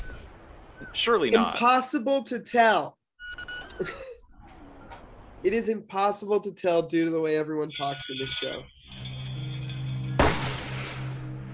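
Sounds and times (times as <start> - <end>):
speech: 0.8 - 3.0, 3.8 - 4.0, 5.4 - 8.8
low hum: 8.0 - 11.5
gunshot: 10.2 - 11.3.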